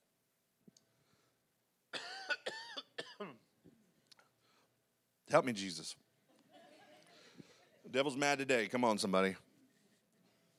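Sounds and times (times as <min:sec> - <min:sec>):
person breathing: 0:00.9 - 0:01.4, 0:04.3 - 0:04.8, 0:07.1 - 0:07.8
person coughing: 0:02.0 - 0:03.5
speech: 0:05.3 - 0:06.0, 0:07.9 - 0:09.4.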